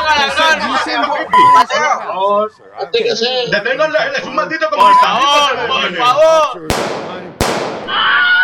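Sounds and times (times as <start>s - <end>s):
speech: 0.2s - 7.1s
gunshot: 6.7s - 8.3s.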